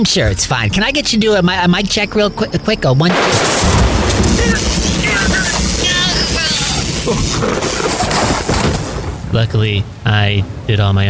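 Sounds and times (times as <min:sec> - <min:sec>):
speech: 0:00.0 - 0:05.5, 0:07.1 - 0:08.3, 0:09.3 - 0:11.0
storm wind buffeting a microphone outdoors: 0:03.2 - 0:10.7.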